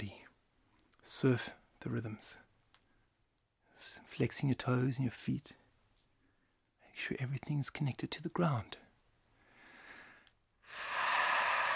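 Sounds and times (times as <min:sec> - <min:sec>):
speech: 0:01.1 - 0:02.5, 0:03.8 - 0:05.6, 0:07.0 - 0:08.8
slow deep breathing: 0:09.4 - 0:11.7.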